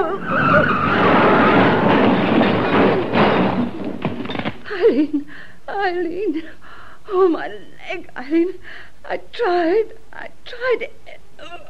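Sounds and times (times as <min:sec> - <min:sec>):
car with failing brakes skidding on bends with tire squeal: 0:00.0 - 0:02.9
rough choppy scraping of a skidding car: 0:00.0 - 0:04.3
speech: 0:04.9 - 0:11.6.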